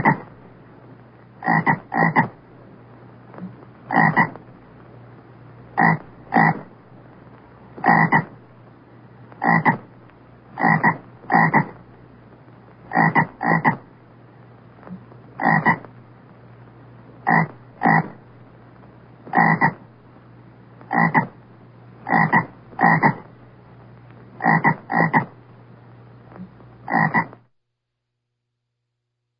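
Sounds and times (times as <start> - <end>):
frog giving loud short croaks: 0.0 - 0.3, 1.4 - 2.4, 3.4 - 4.4, 5.8 - 6.8, 7.8 - 8.4, 9.4 - 9.9, 10.5 - 11.8, 12.9 - 13.9, 14.9 - 15.9, 17.2 - 18.2, 19.3 - 19.9, 20.9 - 21.4, 22.0 - 23.3, 24.4 - 25.4, 26.4 - 27.4
low background hum: 0.0 - 27.5.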